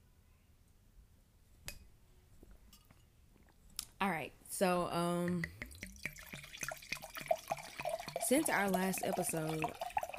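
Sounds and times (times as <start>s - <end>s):
speech: 4.1s - 5.6s, 8.3s - 9.8s
wine glugging from a bottle into a glass: 5.4s - 10.1s.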